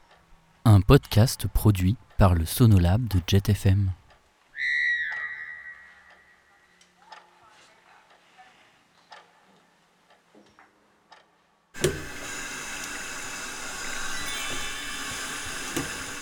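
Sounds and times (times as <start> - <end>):
speech: 0.9 - 4.0
whistling tone: 4.6 - 6.6
water gushing from a push-button tap: 11.8 - 16.2.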